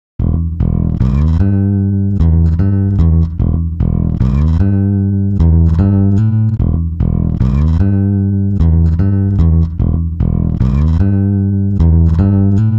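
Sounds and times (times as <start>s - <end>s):
bass: 0.2s - 12.7s.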